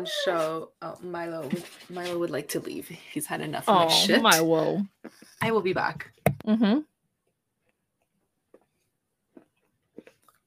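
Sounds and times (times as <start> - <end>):
speech: 0.0 - 6.9
person chewing a chalky antacid tablet: 7.2 - 10.4.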